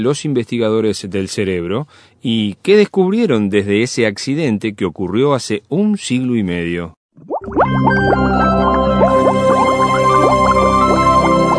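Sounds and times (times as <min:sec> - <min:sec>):
speech: 0:00.0 - 0:08.7
bubbling liquid: 0:07.1 - 0:10.5.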